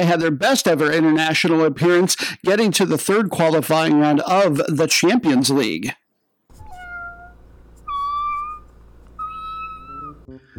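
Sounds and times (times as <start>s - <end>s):
speech: 0.0s - 6.0s
jingle of drawn-out cat meows: 6.5s - 10.3s
steady low hum: 6.5s - 10.3s.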